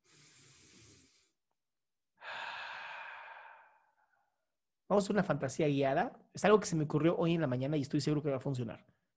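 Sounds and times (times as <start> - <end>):
fuller louder exhale in a deep-breathing exercise: 0.0 - 1.4, 2.2 - 4.2
long airy deep inhale through the nose: 0.0 - 1.4, 2.2 - 3.9
speech: 4.9 - 9.0.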